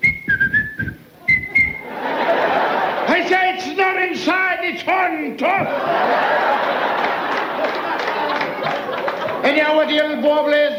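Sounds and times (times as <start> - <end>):
referee whistle blasts during a football match: 0.0 - 1.9
crowd noise: 1.0 - 10.7
laughter: 1.2 - 3.7, 5.4 - 10.1
speech: 4.2 - 7.2, 9.5 - 10.7.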